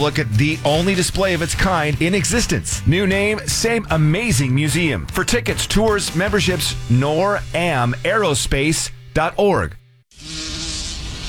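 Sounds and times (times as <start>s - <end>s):
speech: 0.0s - 10.4s
bee buzzing: 10.1s - 11.2s.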